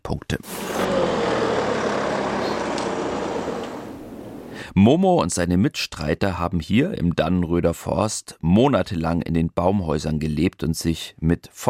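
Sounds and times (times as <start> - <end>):
speech: 0.1 - 1.0, 4.8 - 11.6
car engine rumble: 0.5 - 4.6
road noise: 0.5 - 4.6.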